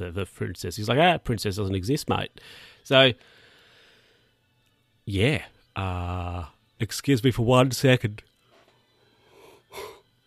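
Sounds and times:
speech: 0.0 - 3.4, 5.1 - 8.3, 9.7 - 9.9
person yawning: 9.6 - 10.0.

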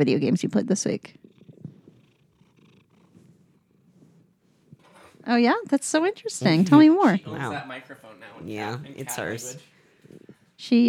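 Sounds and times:
speech: 0.0 - 1.2, 5.3 - 10.8
cat lying on a person purring: 0.8 - 7.6.

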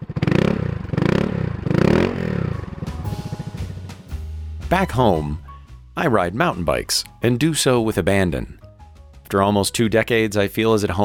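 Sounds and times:
small motor scooter engine revving and idling unevenly: 0.0 - 3.7
speech: 4.7 - 5.4, 6.0 - 8.6, 9.3 - 11.0.

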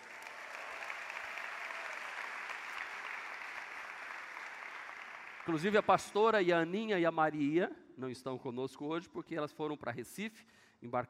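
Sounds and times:
room full of people applauding: 0.0 - 5.8
speech: 5.5 - 11.0.

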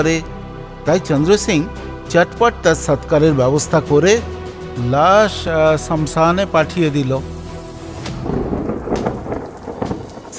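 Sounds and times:
speech: 0.0 - 7.4
heavy monsoon rain at a cremation ground: 7.2 - 10.3
thunder rumbling at a cremation ground: 7.9 - 10.3.

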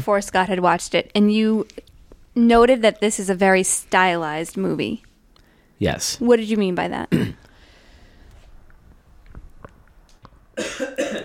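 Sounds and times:
speech: 0.0 - 1.8, 2.4 - 5.1, 5.8 - 7.4
loud forceful cough: 7.1 - 7.4, 10.6 - 11.2.

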